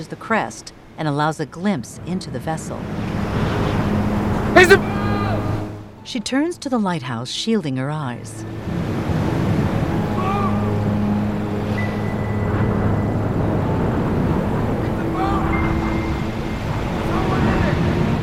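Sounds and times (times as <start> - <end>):
speech: 0.0 - 3.4, 4.6 - 5.1, 6.0 - 8.8
ocean waves washing near the shore: 2.7 - 4.8, 8.5 - 18.2.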